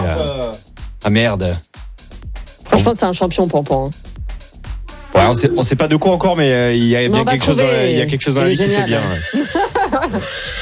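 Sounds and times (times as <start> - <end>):
speech: 1.0 - 1.7, 2.8 - 4.1, 5.1 - 10.6
laughter: 7.1 - 10.4
horse neighing: 8.4 - 10.6.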